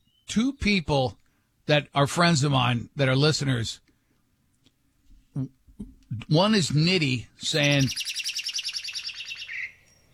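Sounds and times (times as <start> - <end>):
high bright bird chirps ending in a trill: 0.0 - 0.4, 7.4 - 10.1
speech: 0.3 - 3.8, 5.4 - 8.3.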